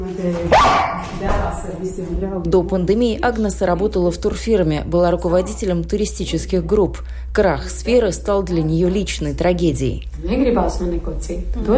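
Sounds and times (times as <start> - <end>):
speech: 0.1 - 11.7
dog yipping and whining softly: 0.5 - 1.1
dog barking sharply: 0.5 - 1.2.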